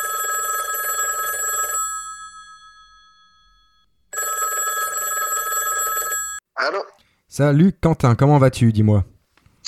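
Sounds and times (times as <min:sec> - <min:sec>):
telephone bell ringing: 0:00.0 - 0:06.4
speech: 0:06.6 - 0:09.6.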